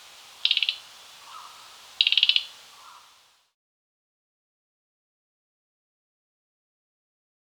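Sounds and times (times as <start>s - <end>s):
Mugimaki flycatcher rattling call: 0.0s - 3.2s.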